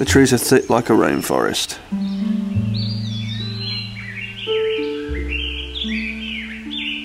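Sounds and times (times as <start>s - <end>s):
speech: 0.0s - 2.4s
toucans calling from trees in rainforest-like woodland: 0.0s - 7.0s
low musical drone: 1.9s - 7.0s.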